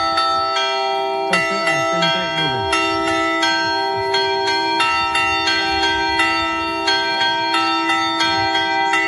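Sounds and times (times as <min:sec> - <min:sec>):
church bells ringing a storm toll: 0:00.0 - 0:09.0.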